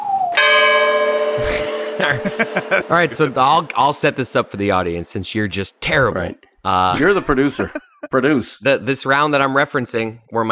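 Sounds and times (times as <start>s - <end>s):
bell ringing with a bright sustained metallic tone: 0.4s - 4.6s
laughter: 1.4s - 4.5s, 7.0s - 8.1s
speech: 2.0s - 10.5s.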